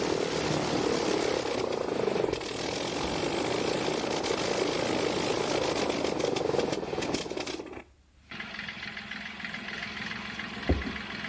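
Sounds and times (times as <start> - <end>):
rotary-engine aeroplane starting up and flying: 0.0 - 11.2
dull thump: 10.7 - 11.0.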